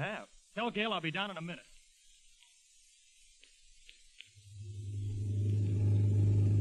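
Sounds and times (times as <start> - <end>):
speech: 0.0 - 1.7
faint clicks: 1.7 - 2.6, 3.2 - 4.5
new car engine rumbling while pulling up to the curb: 4.5 - 6.6.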